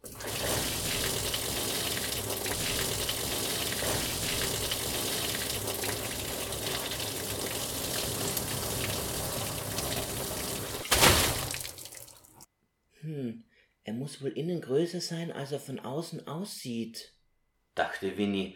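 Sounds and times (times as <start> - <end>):
water pouring and splashing out of a boot: 0.0 - 12.5
speech: 14.2 - 17.2, 17.8 - 18.5.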